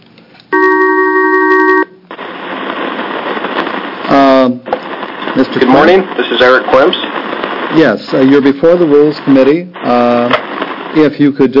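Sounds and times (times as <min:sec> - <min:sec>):
steady electronic telephone ring tone: 0:00.5 - 0:02.0
telephone line hiss and static: 0:00.5 - 0:11.5
speech: 0:05.4 - 0:11.5.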